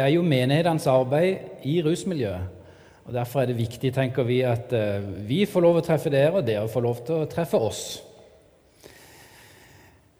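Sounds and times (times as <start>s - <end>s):
speech: 0.0s - 8.1s
person breathing heavily: 8.7s - 10.1s.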